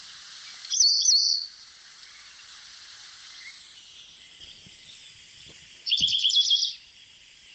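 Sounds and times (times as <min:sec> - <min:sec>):
continuous background water noise: 0:00.0 - 0:07.5
African pied wagtail singing trilled chirruping song: 0:00.4 - 0:02.4, 0:03.4 - 0:06.9.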